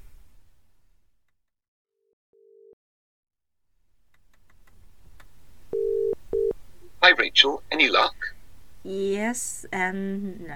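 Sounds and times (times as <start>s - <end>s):
phone line ringing: 5.8s - 6.5s
telephone dial tone: 5.8s - 6.5s
speech: 7.0s - 10.5s.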